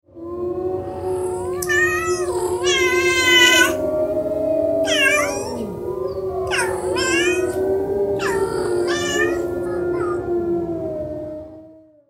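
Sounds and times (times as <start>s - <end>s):
wolf howling: 0.5s - 11.4s
cat meowing: 1.1s - 4.0s, 4.8s - 5.9s, 6.5s - 10.4s.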